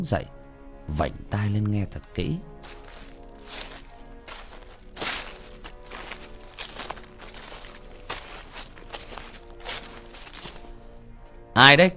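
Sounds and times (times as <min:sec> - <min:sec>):
speech: 0:00.0 - 0:02.8, 0:11.6 - 0:11.9
footsteps: 0:02.6 - 0:11.4.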